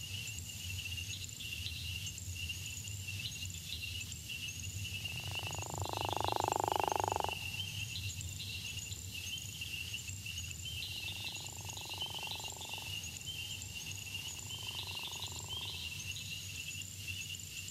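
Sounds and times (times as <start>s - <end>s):
insects trilling: 0.0s - 17.6s
gopher frog snoring call: 5.2s - 7.6s, 11.1s - 13.1s, 14.1s - 16.0s.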